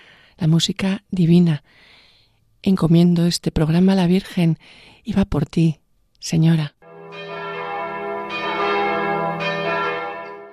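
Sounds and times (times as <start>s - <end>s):
speech: 0.4s - 2.0s, 2.6s - 6.8s
church bells ringing: 6.8s - 10.5s.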